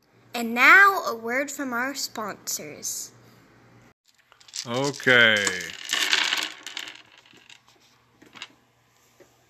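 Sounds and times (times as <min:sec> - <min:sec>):
speech: 0:00.4 - 0:03.2, 0:04.6 - 0:05.8
dice clattering onto a hard table: 0:04.1 - 0:08.6.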